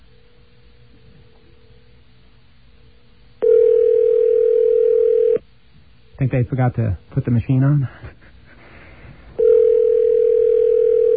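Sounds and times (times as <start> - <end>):
telephone ringback tone on outgoing call: 3.4 - 5.4, 9.4 - 11.1
speech: 6.2 - 8.2.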